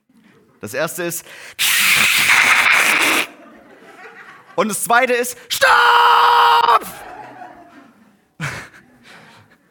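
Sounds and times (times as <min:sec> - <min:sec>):
speech: 0:00.6 - 0:03.3, 0:04.6 - 0:07.1
person vocally imitating a car scraping along a stone pillar: 0:01.6 - 0:03.3
laughter: 0:03.2 - 0:04.6, 0:06.8 - 0:09.6.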